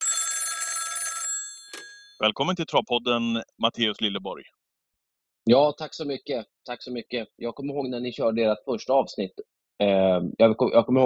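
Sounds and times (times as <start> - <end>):
telephone ringing with a bright trilling bell tone during an outgoing call: 0.0 - 2.3
speech: 2.2 - 4.6, 5.5 - 11.0.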